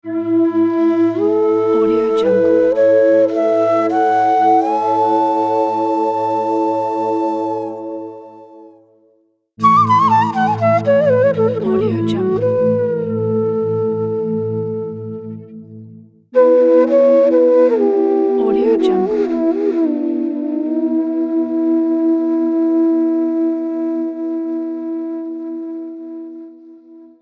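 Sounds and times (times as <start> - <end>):
Indian flute logo melody: 0.0 - 15.8, 16.4 - 27.2.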